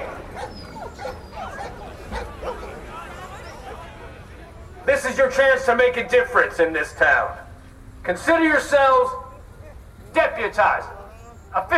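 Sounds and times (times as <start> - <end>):
several dogs barking and yipping: 0.0 - 3.8
speech: 5.1 - 7.4, 8.0 - 9.2, 10.2 - 11.7.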